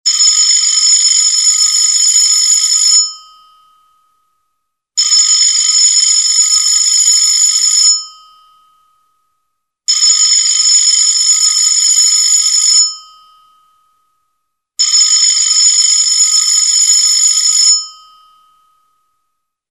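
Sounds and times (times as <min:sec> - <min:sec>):
old phone high ring: 0:00.1 - 0:03.6, 0:05.0 - 0:08.4, 0:09.9 - 0:13.4, 0:14.8 - 0:18.5.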